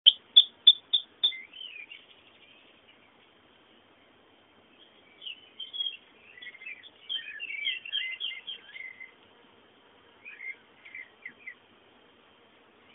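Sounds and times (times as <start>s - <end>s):
bird chirping and warbling: 0.0s - 3.2s, 4.8s - 9.2s, 10.2s - 11.6s
birdsong: 0.0s - 12.9s.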